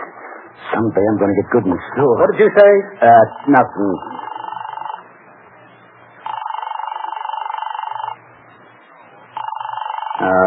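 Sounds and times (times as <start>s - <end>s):
speech: 0.6s - 4.2s
telephone ring tones through the earpiece: 3.0s - 5.1s, 6.2s - 8.2s, 9.3s - 10.4s.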